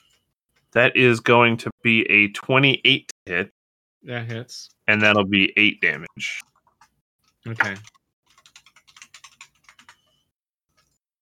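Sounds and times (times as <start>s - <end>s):
speech: 0.7s - 6.5s, 7.4s - 8.0s
typing on a loud computer keyboard: 6.4s - 11.0s.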